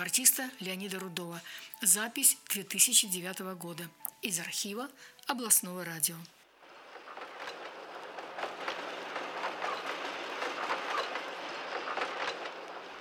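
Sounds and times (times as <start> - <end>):
speech: 0.0 - 6.4
train rumbling past through a station: 6.5 - 13.0
train wheels clacking over rail joints: 6.5 - 13.0.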